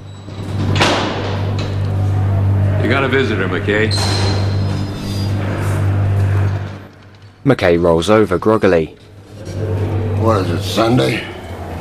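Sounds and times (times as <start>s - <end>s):
prison cell door opening: 0.0s - 7.2s
low hum: 0.0s - 11.7s
speech: 2.8s - 4.4s, 7.4s - 9.0s, 10.2s - 11.3s.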